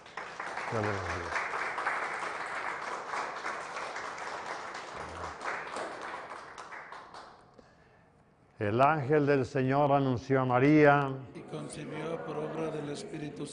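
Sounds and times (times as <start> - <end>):
crowd applause: 0.0 - 7.6
speech: 0.7 - 1.4, 8.6 - 13.5.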